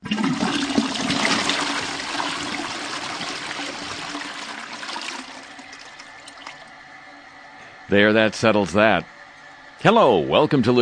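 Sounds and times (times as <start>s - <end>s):
toilet flushing: 0.0s - 10.8s
speech: 7.9s - 9.2s, 9.8s - 10.8s.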